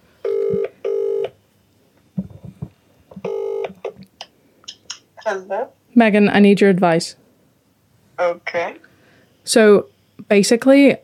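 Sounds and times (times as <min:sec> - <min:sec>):
phone ringback tone on loudspeaker: 0:00.2 - 0:01.3, 0:03.3 - 0:03.7
speech: 0:05.3 - 0:07.2, 0:08.2 - 0:08.9, 0:09.5 - 0:11.0.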